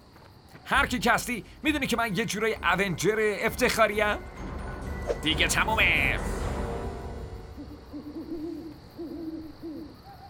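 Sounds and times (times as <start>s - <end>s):
speech: 0.7s - 4.5s, 5.1s - 6.4s
steady rumbling background: 0.7s - 9.0s
owl hooting: 7.6s - 10.2s.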